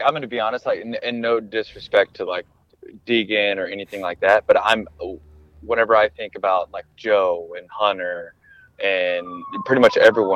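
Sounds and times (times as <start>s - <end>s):
city street noise: 0.0s - 10.3s
speech: 0.0s - 10.3s
emergency vehicle siren in city traffic: 7.7s - 10.3s.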